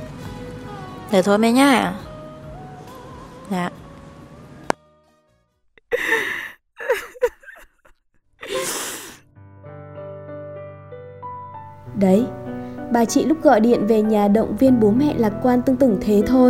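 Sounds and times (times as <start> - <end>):
gentle music: 0.0 - 5.3, 8.5 - 16.4
speech: 1.1 - 2.0, 3.5 - 3.8, 12.0 - 12.4, 13.0 - 16.4
woman weeping softly with shaky gasping sobs and sniffles: 5.8 - 9.3.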